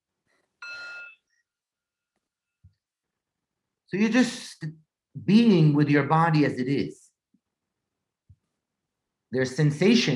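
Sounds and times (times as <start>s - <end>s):
bright meditation bell chime: 0.6s - 1.2s
speech: 3.9s - 7.0s, 9.3s - 10.1s.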